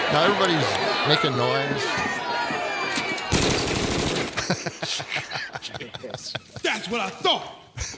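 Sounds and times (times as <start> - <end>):
speech: 0.1 - 2.2, 6.8 - 7.6
automatic gunfire from an AK-47: 3.3 - 4.5
laughter: 4.0 - 7.3.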